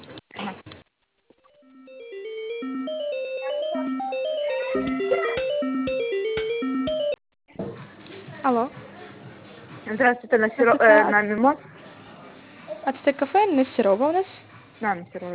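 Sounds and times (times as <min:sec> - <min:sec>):
telephone ringback tone while a call is transferred: 0:01.6 - 0:07.2
speech: 0:04.8 - 0:05.4, 0:08.5 - 0:08.8, 0:09.9 - 0:11.7, 0:12.9 - 0:15.3.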